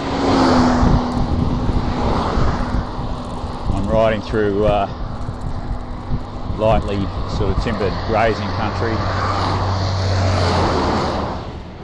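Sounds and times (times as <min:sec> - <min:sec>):
truck passing on a busy road: 0:00.0 - 0:11.8
speech: 0:04.1 - 0:05.0, 0:06.6 - 0:09.5.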